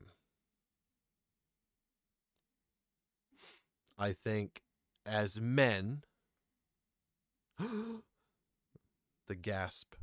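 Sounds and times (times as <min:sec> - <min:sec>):
speech: 0:03.5 - 0:06.1, 0:07.6 - 0:08.1, 0:09.3 - 0:10.0
sharp voiced gasp: 0:07.6 - 0:08.3.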